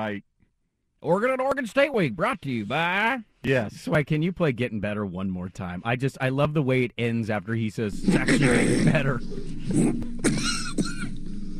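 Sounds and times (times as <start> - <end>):
speech: 0.0 - 0.3, 1.0 - 10.5
person coughing: 10.2 - 11.2.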